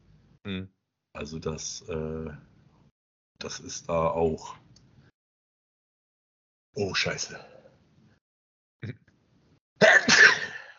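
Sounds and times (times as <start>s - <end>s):
speech: 0.4s - 2.5s, 3.4s - 4.6s, 6.8s - 7.5s, 8.8s - 9.0s
loud sneeze: 9.8s - 10.7s.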